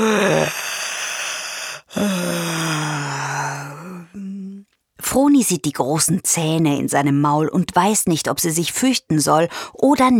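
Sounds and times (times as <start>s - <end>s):
human voice imitating the yawn of a huge hippo: 0.0s - 4.5s
speech: 5.5s - 10.1s.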